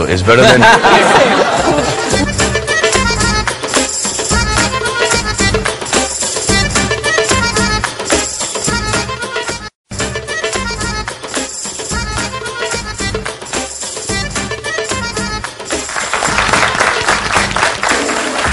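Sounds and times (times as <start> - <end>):
speech: 0.0 - 1.9
music: 0.0 - 18.5
laughter: 0.2 - 2.3
large crowd audience clapping: 15.7 - 18.5.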